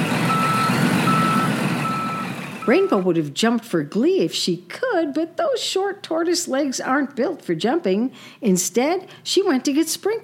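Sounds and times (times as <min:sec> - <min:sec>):
big truck engine rumble while backing up a driveway: 0:00.0 - 0:03.0
big truck reversing alarm: 0:00.2 - 0:03.1
speech: 0:02.7 - 0:10.2.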